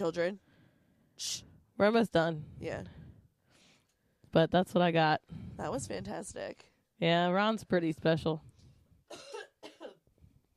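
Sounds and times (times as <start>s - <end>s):
speech: 0.0s - 0.5s, 1.2s - 3.0s, 4.4s - 8.5s, 9.1s - 9.4s
harsh coughs: 9.1s - 10.0s.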